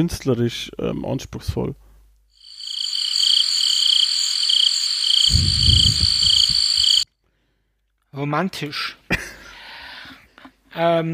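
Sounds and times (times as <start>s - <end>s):
speech: 0.0s - 1.8s, 8.2s - 9.0s, 10.8s - 11.1s
crickets chirping: 2.4s - 7.0s
low croaking or rumbling: 2.5s - 7.0s.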